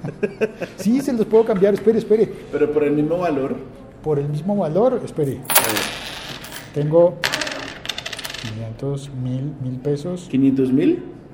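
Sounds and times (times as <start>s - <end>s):
laughter: 0.0s - 1.1s
speech: 0.0s - 6.1s, 6.8s - 7.4s, 8.4s - 11.2s
coins dropping: 5.2s - 8.6s.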